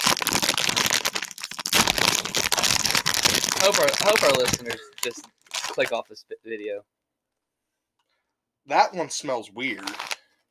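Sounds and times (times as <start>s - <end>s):
bag of chips crinkling as it is opened: 0.0s - 6.0s, 9.8s - 10.3s
speech: 3.7s - 7.0s, 8.7s - 10.1s.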